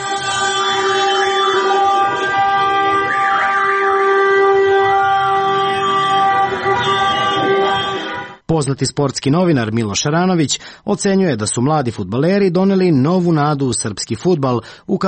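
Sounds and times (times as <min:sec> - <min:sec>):
car horns blaring in a street celebration in central Belgrade after a football victory: 0:00.0 - 0:08.5
speech: 0:08.7 - 0:15.0.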